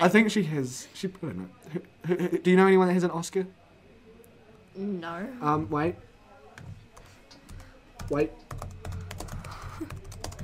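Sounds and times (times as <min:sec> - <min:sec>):
speech: 0:00.0 - 0:03.6, 0:04.8 - 0:06.1, 0:08.1 - 0:08.7, 0:09.8 - 0:10.0
low hum: 0:00.0 - 0:10.4
computer keyboard typing: 0:06.6 - 0:10.4.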